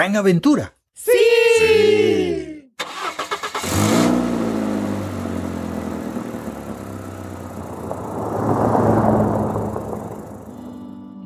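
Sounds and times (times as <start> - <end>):
speech: 0.0 - 2.5
car starter cranking: 2.8 - 8.0
car engine roaring and accelerating away: 3.6 - 11.0.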